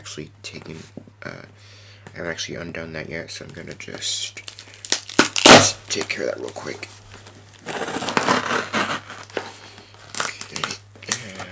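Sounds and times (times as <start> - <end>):
speech: 0.1 - 4.5, 5.6 - 7.0
cardboard shipping box being opened: 7.6 - 11.5.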